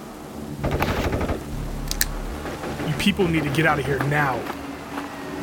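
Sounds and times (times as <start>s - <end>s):
gunshots fired inside a house: 0.6s - 4.4s
speech: 3.0s - 4.6s.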